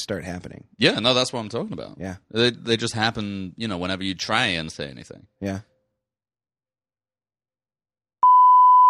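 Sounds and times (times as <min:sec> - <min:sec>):
speech: 0:00.0 - 0:05.7
censor bleep tone: 0:08.2 - 0:08.8.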